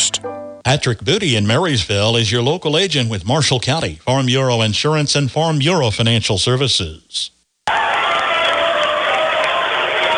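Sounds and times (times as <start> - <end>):
speech: 0.0 - 7.8
large arena crowd cheering and clapping at a basketball game: 7.6 - 10.1.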